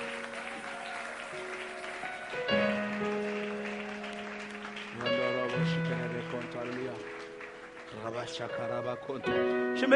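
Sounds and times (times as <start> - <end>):
standing church audience cheering in worship: 0.0 - 7.0
standing church audience applauding in worship: 0.0 - 9.2
sustained keyboard chords: 0.0 - 9.9
speech: 8.2 - 9.9.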